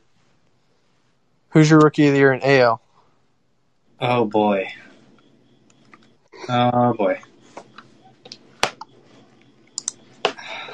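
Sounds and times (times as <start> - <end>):
low steady hum: 0.0 - 10.7
speech: 1.6 - 2.8, 4.0 - 4.8, 6.4 - 7.3
typing on a computer keyboard: 9.8 - 10.0.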